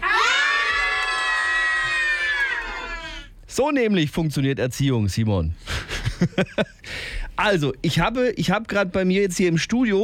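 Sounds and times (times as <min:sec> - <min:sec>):
group of children screaming together in a studio: 0:00.0 - 0:03.2
speech: 0:03.6 - 0:10.0.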